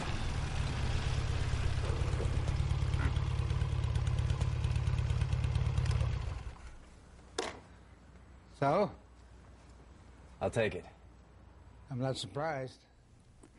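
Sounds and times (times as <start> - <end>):
motorcycle engine starting and idling: 0.2 - 6.8
speech: 8.6 - 9.0, 10.4 - 10.9, 11.9 - 12.9.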